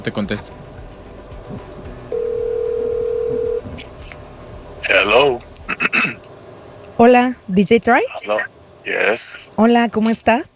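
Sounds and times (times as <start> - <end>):
speech: 0.0 - 0.6, 1.5 - 1.7, 4.9 - 5.4, 7.0 - 10.5
steady electronic telephone tone while calling someone back: 2.1 - 3.6.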